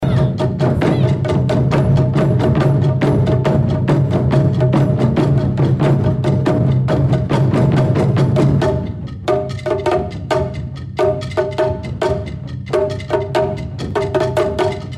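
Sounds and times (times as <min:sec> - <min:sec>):
drums: 0:00.0 - 0:14.9.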